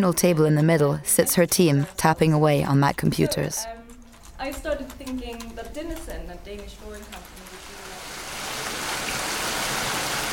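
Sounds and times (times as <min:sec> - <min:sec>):
speech: 0:00.0 - 0:03.8, 0:04.4 - 0:07.3
heavy British rain downpour outdoors: 0:07.3 - 0:10.3.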